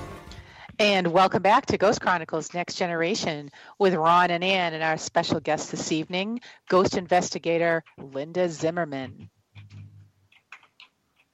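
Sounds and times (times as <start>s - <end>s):
speech: 0.8s - 9.4s
computer keyboard typing: 9.1s - 11.3s.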